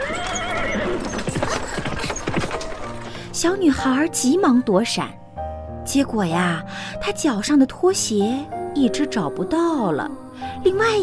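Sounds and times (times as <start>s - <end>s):
horse neighing: 0.0s - 2.9s
horse-drawn carriage rushing past with clip-clop hoofbeats: 0.0s - 3.4s
speech: 3.4s - 5.2s, 5.9s - 11.0s.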